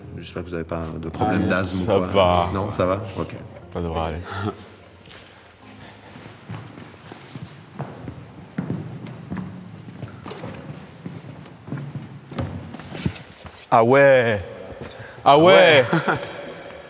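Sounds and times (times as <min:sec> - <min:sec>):
speech: 0:00.2 - 0:04.7, 0:13.7 - 0:14.5, 0:15.2 - 0:16.4
footsteps echoing through the largest hall of a cave system: 0:05.0 - 0:16.8
laughter: 0:15.3 - 0:16.8.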